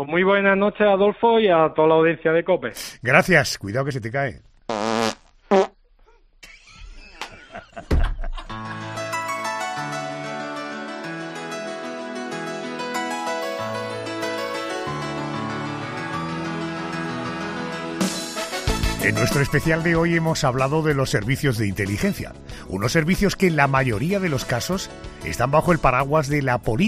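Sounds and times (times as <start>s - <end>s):
speech: 0.0s - 4.9s, 19.3s - 26.8s
fart sound effects: 4.7s - 5.8s
laughter: 6.4s - 9.1s
steady music with sustained tones: 8.6s - 18.5s.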